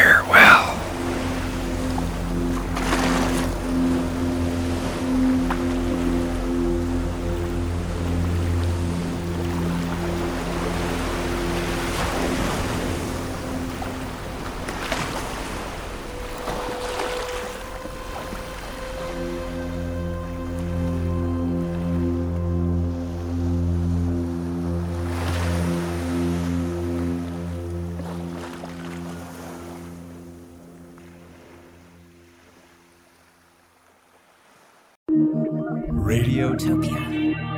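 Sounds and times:
longboats sailing on ocean waves: 0:00.0 - 0:35.0
wind: 0:00.0 - 0:35.0
steady low droning hum: 0:00.8 - 0:28.0
speech: 0:36.1 - 0:37.4.

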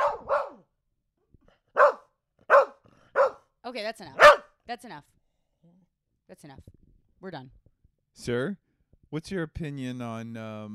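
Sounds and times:
dog making short breathy weak barks after howling: 0:00.0 - 0:00.6, 0:01.8 - 0:03.4, 0:04.2 - 0:04.5
speech: 0:03.7 - 0:05.2, 0:06.3 - 0:07.6, 0:08.2 - 0:10.7.

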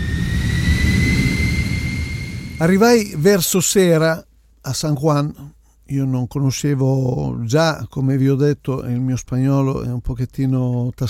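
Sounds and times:
jet airplane roaring in flight to San Juan Puerto Rico: 0:00.0 - 0:02.8
speech: 0:02.6 - 0:11.0.

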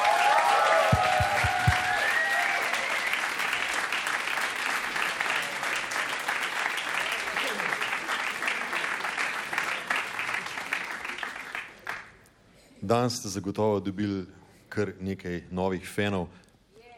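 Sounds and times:
audience applause for a band: 0:00.0 - 0:12.1
speech: 0:12.9 - 0:16.4.

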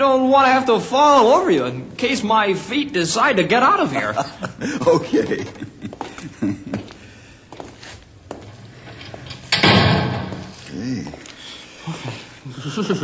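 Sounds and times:
speech: 0:00.0 - 0:05.7, 0:12.8 - 0:13.0
laughter: 0:03.8 - 0:07.0, 0:12.4 - 0:13.0
heavy door rattling as it is secured: 0:08.5 - 0:10.7
heavy door slamming shut: 0:08.8 - 0:10.6.

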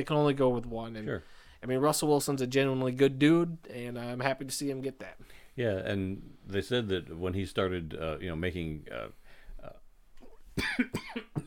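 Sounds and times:
speech: 0:00.0 - 0:09.8, 0:10.6 - 0:11.4
person coughing loud and raspy: 0:10.6 - 0:11.4.

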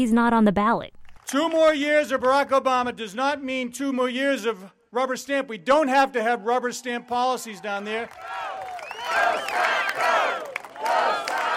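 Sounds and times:
speech: 0:00.0 - 0:09.7
large crowd at an outdoor election rally cheering and shouting: 0:06.0 - 0:11.5.

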